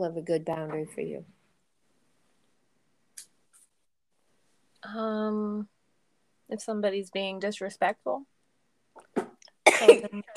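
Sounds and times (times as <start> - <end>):
speech: 0.0 - 1.4, 4.8 - 5.7, 6.5 - 8.3, 9.2 - 10.3
explosive combined cough and sneeze: 9.6 - 10.3
person coughing: 9.7 - 10.3.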